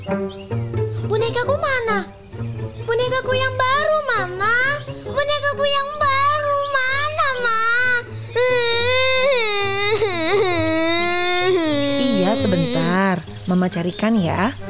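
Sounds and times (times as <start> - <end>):
speech: 0.0 - 2.2, 13.5 - 14.6
child crying and wailing: 3.5 - 13.2.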